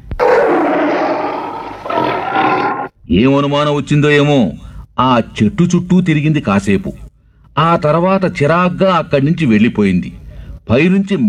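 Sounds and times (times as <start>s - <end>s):
lion roaring: 0.1s - 3.0s
speech: 3.1s - 7.0s, 7.6s - 11.2s.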